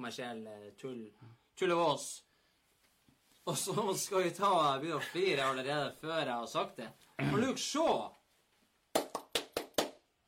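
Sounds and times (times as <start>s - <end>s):
speech: 0.0s - 2.3s, 3.4s - 8.2s
single person clapping hands: 8.9s - 10.1s.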